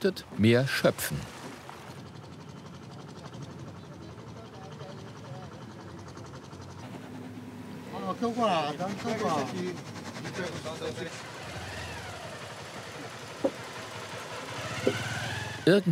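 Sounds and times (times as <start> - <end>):
speech: 0.0 - 1.4, 8.2 - 11.3, 15.7 - 15.9
ferry engine drone on the water: 0.0 - 15.9
short knocks: 13.4 - 13.6.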